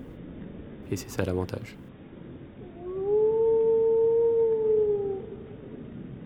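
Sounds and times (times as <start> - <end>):
speech: 0.9 - 1.8
wolf-like howl: 2.6 - 5.7.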